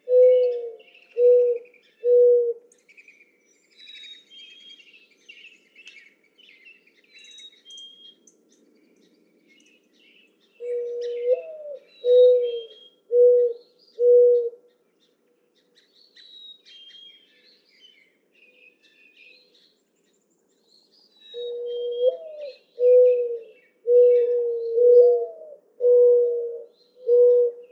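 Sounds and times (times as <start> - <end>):
mourning dove cooing: 0.0 - 2.7, 10.6 - 14.7, 21.4 - 27.7.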